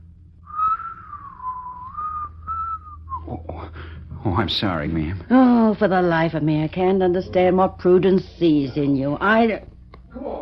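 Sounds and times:
low hum: 0.0s - 10.4s
person whistling a short melodic tune: 0.5s - 3.4s
speech: 3.3s - 9.7s.

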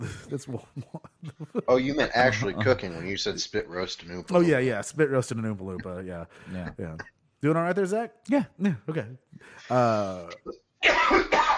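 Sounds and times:
speech: 0.0s - 11.5s
man coughing: 10.8s - 11.5s.

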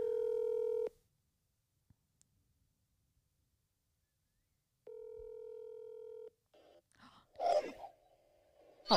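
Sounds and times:
electronic telephone ringback tones: 0.0s - 0.9s, 4.9s - 6.3s.

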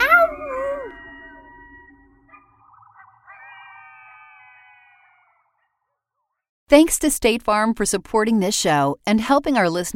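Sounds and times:
coyotes howling and yipping: 0.0s - 6.0s
speech: 6.7s - 9.9s.

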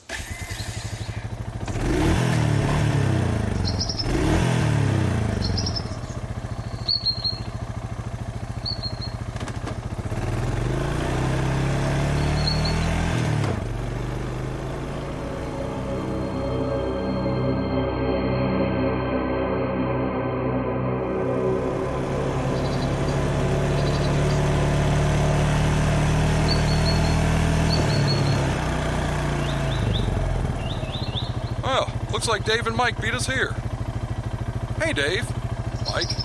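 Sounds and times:
engine of a car being driven: 0.0s - 36.2s
speech: 32.2s - 33.6s, 34.9s - 35.3s, 36.0s - 36.2s.

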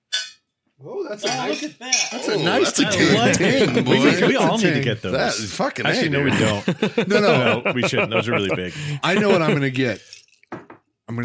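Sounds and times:
glasses clinking in a toast: 0.1s - 0.4s, 1.2s - 4.9s, 9.1s - 10.7s
speech: 0.8s - 10.1s
laughter: 2.1s - 10.0s.

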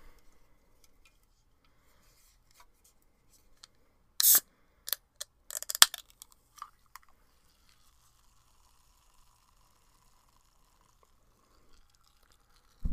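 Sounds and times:
Diet Coke can being cracked open: 4.2s - 12.8s
faint crackles of Diet Coke fizz: 7.4s - 12.9s.

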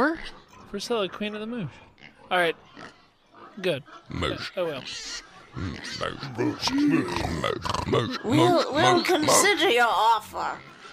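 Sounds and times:
speech: 0.0s - 3.0s, 3.6s - 10.7s
person imitating pig grunts and oinks: 5.6s - 9.8s.

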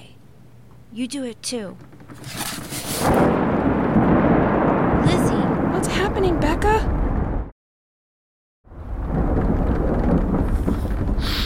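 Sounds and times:
speech: 0.9s - 2.4s
loud deep rolling thunder: 2.8s - 7.5s, 8.7s - 11.4s.

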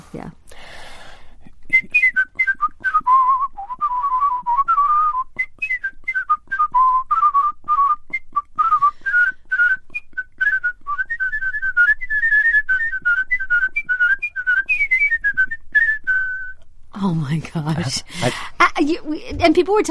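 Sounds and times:
speech: 0.1s - 0.8s, 17.9s - 19.8s
competition-winning whistler whistling a lively melody with trills: 1.7s - 16.6s.

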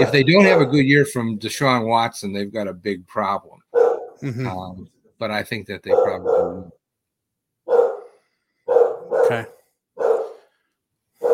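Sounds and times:
speech: 0.0s - 6.8s, 9.3s - 9.6s
dog barking: 0.4s - 0.8s, 3.7s - 4.2s, 5.9s - 6.8s, 7.7s - 10.5s, 11.2s - 11.3s.

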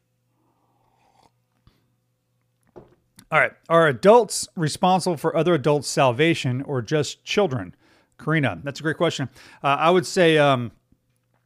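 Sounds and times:
slurping sip of coffee from a cup: 0.4s - 1.8s
cup clunk set down: 2.7s - 3.0s
speech: 3.3s - 10.8s.

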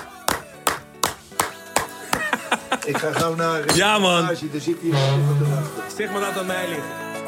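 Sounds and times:
crisp hand claps: 0.0s - 2.4s
laughter: 2.0s - 3.7s
speech: 2.7s - 7.1s.

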